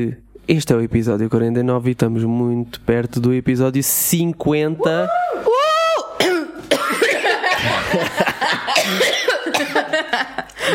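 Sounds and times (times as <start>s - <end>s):
speech: 0.0s - 5.5s
person coughing in harsh dry bursts: 6.2s - 8.0s, 8.6s - 10.0s
person chuckling: 7.1s - 10.7s.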